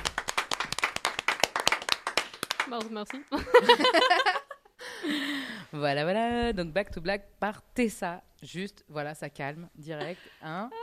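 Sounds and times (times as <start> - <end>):
small group clapping for a singer: 0.0 - 4.0
speech: 2.7 - 4.4, 5.0 - 10.8.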